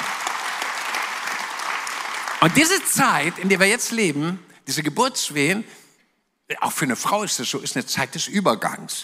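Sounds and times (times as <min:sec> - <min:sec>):
audience applauding: 0:00.0 - 0:04.0
speech: 0:02.4 - 0:05.8, 0:06.5 - 0:09.0.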